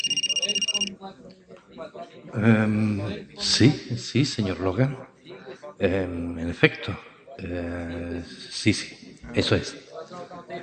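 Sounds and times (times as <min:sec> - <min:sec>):
telephone ringing with a rapid electronic trill: 0:00.0 - 0:00.9
speech: 0:01.0 - 0:05.1, 0:05.8 - 0:10.6.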